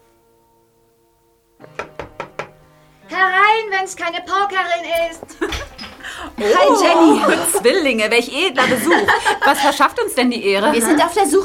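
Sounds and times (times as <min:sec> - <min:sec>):
knocking on a students' room door in a girls' boarding school: 0:01.6 - 0:02.6
speech: 0:03.8 - 0:05.6, 0:06.2 - 0:11.4
laughter: 0:05.3 - 0:10.0.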